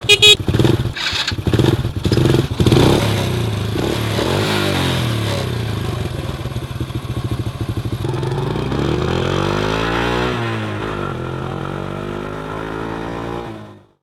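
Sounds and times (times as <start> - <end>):
moped starting and driving: 0.0 - 13.8
street traffic: 0.0 - 13.8.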